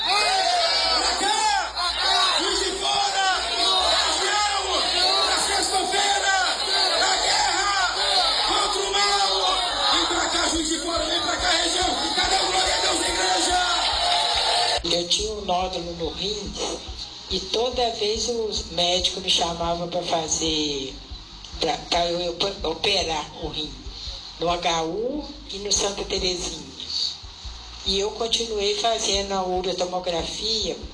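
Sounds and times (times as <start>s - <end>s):
large crowd shouting in unison: 0.0s - 14.8s
speech: 16.0s - 23.8s, 24.4s - 26.6s, 27.9s - 30.9s.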